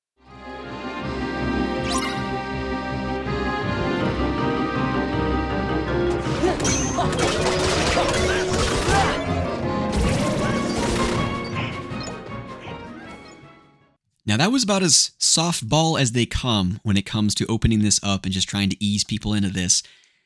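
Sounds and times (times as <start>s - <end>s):
spooky video game music: 0.2s - 14.0s
crashing clattering percussion: 6.1s - 11.6s
speech: 14.4s - 20.0s.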